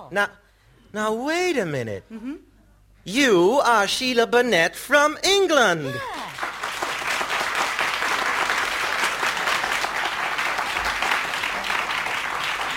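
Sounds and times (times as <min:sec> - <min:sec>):
speech: 0:00.1 - 0:06.2
audience applause: 0:06.1 - 0:12.7.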